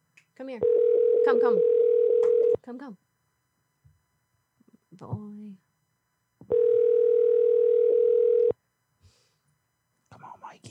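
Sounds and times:
speech: 0:00.4 - 0:01.8, 0:02.7 - 0:03.0, 0:05.0 - 0:05.6
faint electronic telephone ringing tone: 0:00.6 - 0:02.6, 0:06.5 - 0:08.5.

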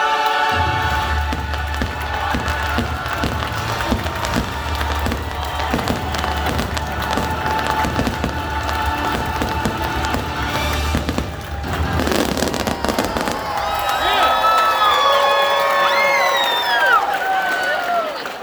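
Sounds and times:
large outdoor crowd cheering and screaming at a theme park finale: 0:00.2 - 0:18.4
booming crackling fireworks: 0:00.6 - 0:14.7.

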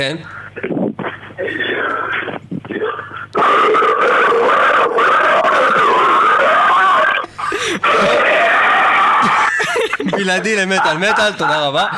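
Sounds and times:
speech: 0:00.0 - 0:00.7, 0:10.2 - 0:11.9
person making guttural growls and gurgles imitating pig stomach juices: 0:00.6 - 0:09.6
laughter: 0:04.3 - 0:11.9.

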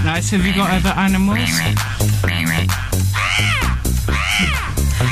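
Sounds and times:
speech: 0:00.1 - 0:02.3
crow cawing: 0:03.1 - 0:05.1.

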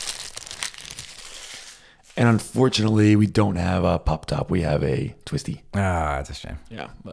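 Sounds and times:
paper wrapper being peeled off bottle: 0:00.0 - 0:02.3
speech: 0:02.2 - 0:07.1.

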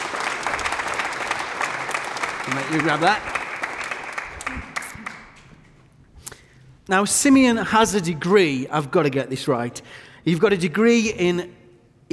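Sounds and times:
audience applause: 0:00.0 - 0:05.5
speech: 0:02.5 - 0:03.4, 0:06.9 - 0:12.1.

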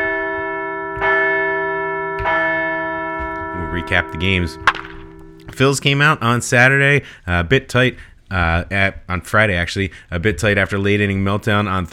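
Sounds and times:
large bell ringing: 0:00.0 - 0:05.5
speech: 0:03.8 - 0:04.8, 0:05.5 - 0:11.9.

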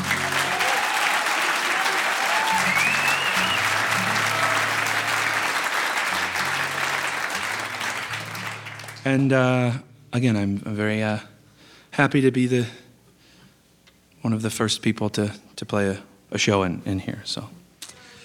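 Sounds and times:
audience at a music show applauding: 0:00.0 - 0:09.3
whistles: 0:02.4 - 0:03.9
speech: 0:09.1 - 0:11.3, 0:12.0 - 0:12.8, 0:14.2 - 0:17.6.

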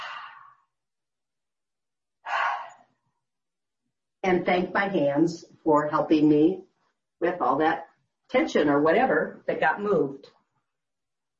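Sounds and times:
deep breath at the end of a calming self-massage: 0:00.0 - 0:00.8, 0:02.2 - 0:03.1
speech: 0:04.2 - 0:06.6, 0:07.2 - 0:10.4.

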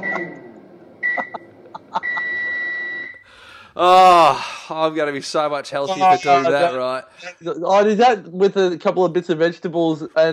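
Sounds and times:
microwave oven beeping: 0:00.0 - 0:03.2
speech: 0:03.8 - 0:10.3.

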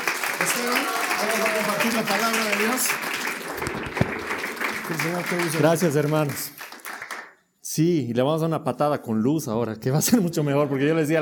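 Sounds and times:
audience applause welcoming a speaker: 0:00.0 - 0:07.3
speech: 0:00.6 - 0:04.1, 0:04.9 - 0:06.5, 0:07.8 - 0:11.2.

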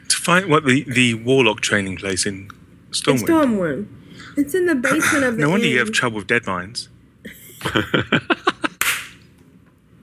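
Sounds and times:
speech: 0:00.2 - 0:07.0, 0:07.6 - 0:08.4
loud sharp smack: 0:08.8 - 0:09.2
slapping hits: 0:08.8 - 0:09.2.

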